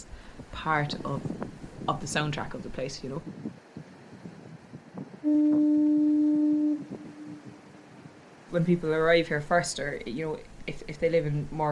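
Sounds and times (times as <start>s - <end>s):
low rumble: 0.0s - 11.7s
speech: 0.6s - 3.6s, 8.5s - 11.7s
decommissioned coastal fog signal horn blast: 5.2s - 8.4s.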